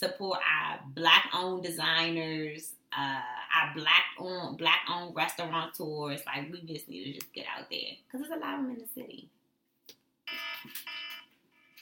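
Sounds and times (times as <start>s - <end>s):
speech: 0.0s - 9.4s, 10.3s - 11.0s
timer electronic alarm tone: 10.3s - 11.8s.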